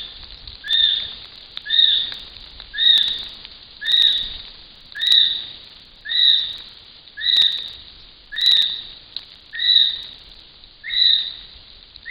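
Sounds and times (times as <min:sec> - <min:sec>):
male kiwi calling: 0:00.7 - 0:11.2.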